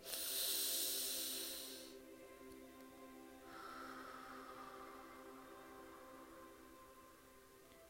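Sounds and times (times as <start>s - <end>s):
breathing in through nose, out through mouth: 0.0s - 7.6s.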